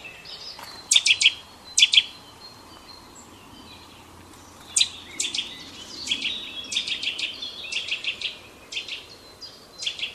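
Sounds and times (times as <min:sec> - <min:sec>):
Eurasian nuthatch Sitta europaea piping calls: 0:00.2 - 0:02.2, 0:04.7 - 0:10.1.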